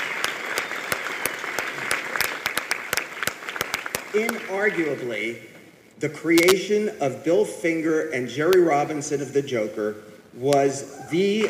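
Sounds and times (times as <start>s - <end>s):
crowd clapping: 0.0s - 5.0s
speech: 4.2s - 11.4s.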